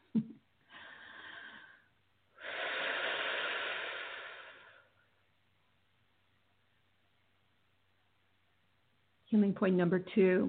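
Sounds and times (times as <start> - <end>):
speech: 0.2 - 0.4, 9.4 - 10.4
deep breathing done to help move energy: 0.6 - 5.0.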